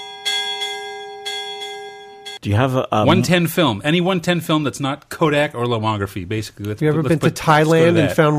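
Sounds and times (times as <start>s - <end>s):
bright bell ringing: 0.0s - 2.4s
speech: 2.4s - 8.3s.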